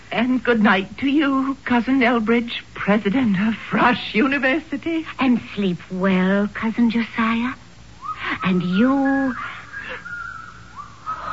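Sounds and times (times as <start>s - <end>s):
speech: 0.1s - 7.6s, 8.3s - 9.6s
eerie whistling: 8.0s - 11.3s.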